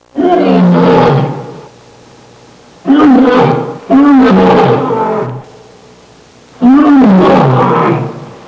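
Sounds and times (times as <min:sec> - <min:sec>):
vintage lion roar: 0:00.1 - 0:01.7, 0:02.8 - 0:05.5, 0:06.6 - 0:08.4.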